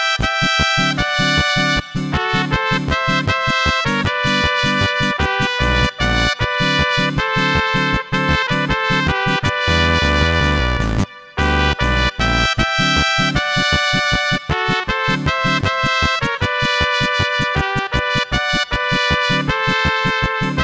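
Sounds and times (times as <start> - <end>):
Ovation bass guitar: 0.2 - 20.6.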